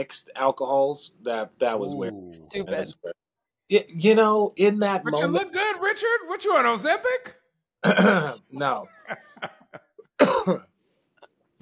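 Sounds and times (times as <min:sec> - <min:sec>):
speech: 0:00.0 - 0:09.5, 0:10.4 - 0:10.7
throat clearing: 0:07.8 - 0:08.4, 0:10.2 - 0:10.8.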